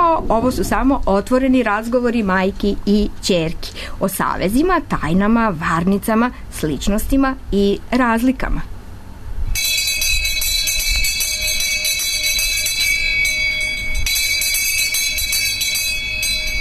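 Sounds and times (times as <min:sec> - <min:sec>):
speech: 0:00.2 - 0:08.7
electric school bell ringing: 0:09.6 - 0:16.5.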